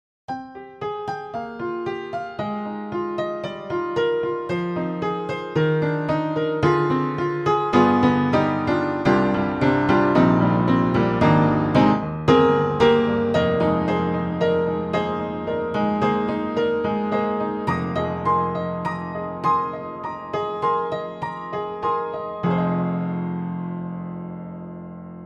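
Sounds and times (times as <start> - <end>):
vintage upright piano: 0.3 - 25.2.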